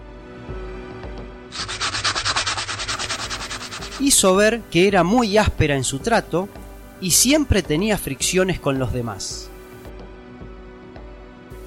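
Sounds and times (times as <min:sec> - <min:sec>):
speech: 0:01.5 - 0:01.8, 0:04.0 - 0:09.5
sandpaper rubbing in back-and-forth strokes: 0:01.6 - 0:04.4.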